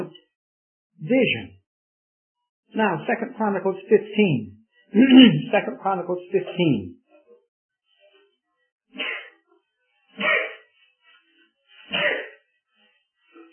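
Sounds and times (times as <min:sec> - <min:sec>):
speech: 0:01.0 - 0:01.6, 0:02.7 - 0:07.0
person sneezing: 0:05.0 - 0:05.5, 0:09.0 - 0:09.4
laughter: 0:05.0 - 0:06.8.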